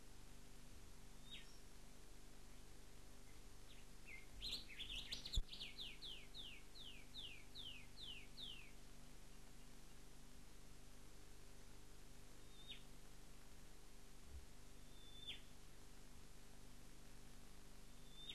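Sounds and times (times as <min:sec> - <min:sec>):
low steady hum: 0:00.0 - 0:18.3
rufous whistler singing: 0:01.2 - 0:01.6, 0:03.7 - 0:08.8, 0:12.4 - 0:12.8, 0:14.8 - 0:15.5, 0:18.0 - 0:18.3.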